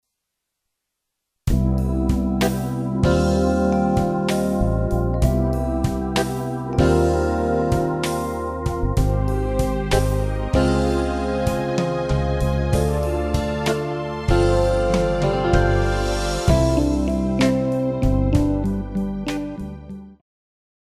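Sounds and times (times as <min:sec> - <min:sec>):
instrumental waltz: 0:01.6 - 0:20.2.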